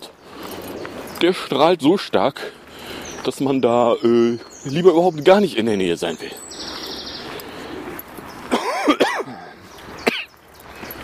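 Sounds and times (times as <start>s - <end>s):
speech: 1.2s - 2.6s, 3.2s - 6.7s
person coughing: 8.5s - 10.3s
throat clearing: 8.5s - 10.3s.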